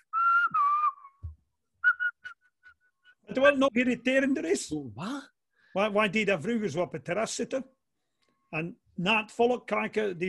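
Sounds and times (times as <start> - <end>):
person whistling a short tune: 0.0 - 3.2
speech: 3.3 - 7.8, 8.5 - 10.2.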